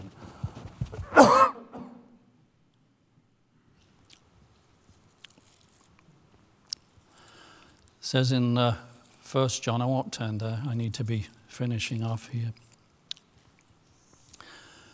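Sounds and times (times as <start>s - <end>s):
loud cough: 1.0s - 2.0s
speech: 8.1s - 12.6s.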